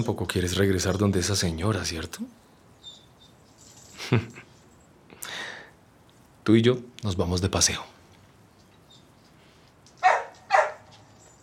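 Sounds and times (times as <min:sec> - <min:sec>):
speech: 0:00.0 - 0:02.4, 0:04.0 - 0:04.4, 0:06.4 - 0:08.0
dog barking: 0:10.0 - 0:11.4.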